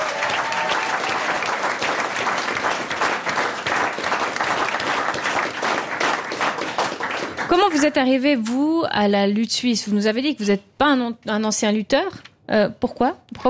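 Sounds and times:
sustained dense audience applause: 0:00.0 - 0:07.8
speech: 0:07.5 - 0:13.4.

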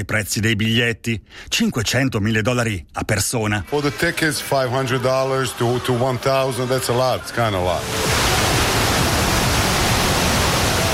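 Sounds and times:
speech: 0:00.0 - 0:08.4
ocean surf washing around a pier: 0:07.7 - 0:10.9.

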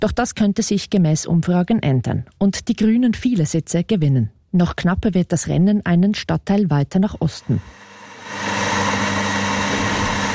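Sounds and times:
speech: 0:00.0 - 0:07.8
coffee machine humming and hissing while preparing a cappuccino: 0:07.4 - 0:10.3.

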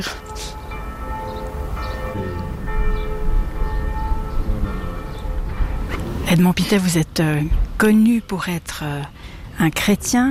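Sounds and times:
speech: 0:00.0 - 0:00.2, 0:06.3 - 0:10.2
church bells ringing: 0:00.0 - 0:07.6
dense low rumbling background: 0:01.5 - 0:07.9.

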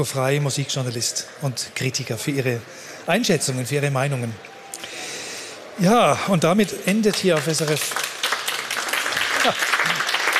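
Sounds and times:
speech: 0:00.0 - 0:04.9, 0:05.8 - 0:08.0, 0:09.4 - 0:09.7
audience applause after an orchestra concert: 0:06.5 - 0:10.3.

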